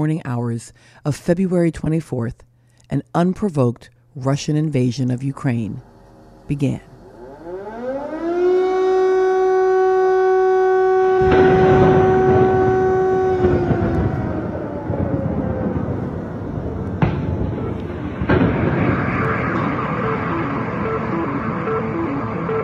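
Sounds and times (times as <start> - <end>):
speech: 0.0 - 5.9, 6.5 - 6.9
air raid siren wailing and winding down: 7.0 - 22.6
rumbling broadband noise: 11.2 - 22.6.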